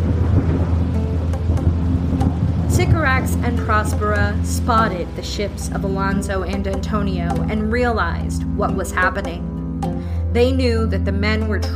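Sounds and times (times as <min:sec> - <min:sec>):
sharp thunder crackles: 0:00.0 - 0:06.4
heavy thunderstorm thunder rumbling: 0:00.0 - 0:09.6
dense rain pouring: 0:00.0 - 0:10.3
speech: 0:03.2 - 0:11.7.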